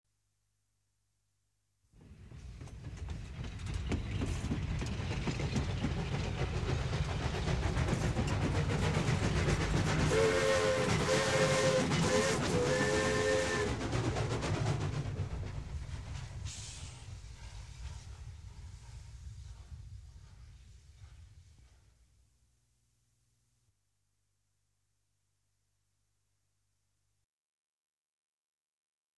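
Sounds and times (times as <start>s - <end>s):
steam train passing: 2.0s - 22.2s
steam train whistle: 10.0s - 13.8s.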